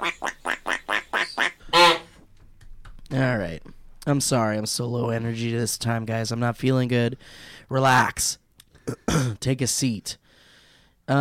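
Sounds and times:
pet duck quacking: 0.0s - 2.2s
speech: 3.2s - 8.4s, 9.4s - 10.2s, 11.1s - 11.2s.

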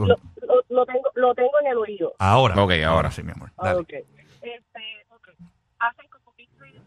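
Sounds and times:
muffled garbled voice over phone line: 0.0s - 0.6s, 2.2s - 3.9s
speech: 0.0s - 4.6s.

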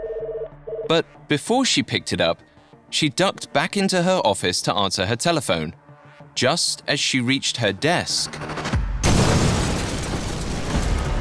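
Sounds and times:
speech: 0.9s - 5.8s, 6.4s - 8.6s
explosion boom in a building: 8.8s - 11.1s
roaring crackling rumble of debris and shaking: 9.0s - 11.1s.

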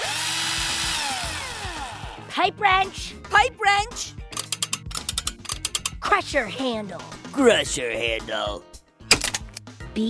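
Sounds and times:
power drill whirring: 0.0s - 2.2s
speech: 2.4s - 4.2s, 6.1s - 8.7s.

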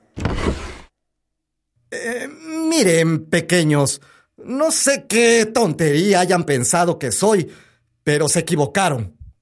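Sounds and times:
window sliding open: 0.0s - 0.9s
speech: 2.0s - 9.2s.

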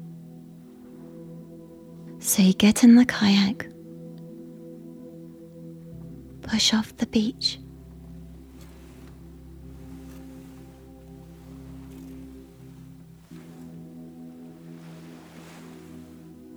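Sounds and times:
steady low tonal drone: 0.0s - 16.5s
speech: 2.2s - 3.7s, 6.5s - 7.6s
ocean swell rolling off a beach: 4.8s - 16.5s.

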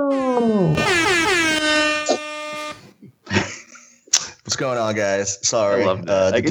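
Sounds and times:
air horns blaring in a wavering chord: 0.1s - 2.9s
speech: 4.6s - 6.4s.

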